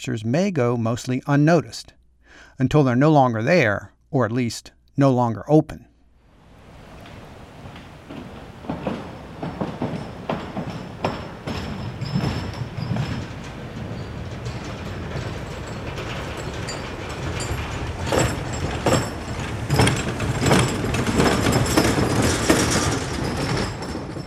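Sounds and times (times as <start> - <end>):
speech: 0.0 - 5.9
heavy truck rumbling across a metal truss bridge: 6.2 - 24.2
metal truss bridge deck clanking and rattling: 6.2 - 24.2.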